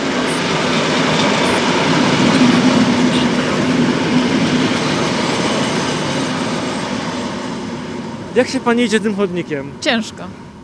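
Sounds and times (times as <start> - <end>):
regional passenger train rumbling past at a station: 0.0 - 10.6
speech: 8.4 - 10.4.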